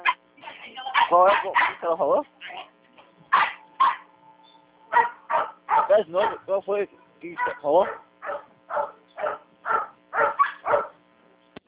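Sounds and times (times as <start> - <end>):
dog barking: 0.9 - 1.9, 3.3 - 4.1, 4.9 - 6.5, 7.3 - 11.0
speech: 1.1 - 2.4, 6.0 - 8.1.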